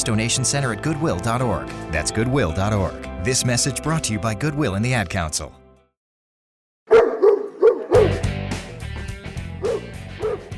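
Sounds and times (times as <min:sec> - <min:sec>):
speech: 0:00.0 - 0:05.6
dogs barking and yipping: 0:06.9 - 0:08.4, 0:09.6 - 0:10.5.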